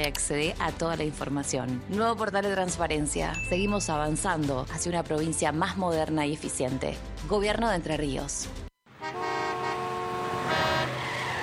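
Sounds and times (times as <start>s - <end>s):
speech: 0.0s - 8.6s
car horn blaring: 8.9s - 11.0s
road traffic noise: 8.9s - 11.4s
skidding tires screeching: 10.0s - 11.4s.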